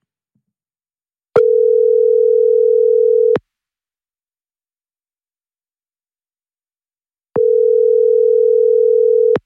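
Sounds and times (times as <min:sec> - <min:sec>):
telephone ringing tone on an outgoing call: 0:01.4 - 0:03.4, 0:07.4 - 0:09.4.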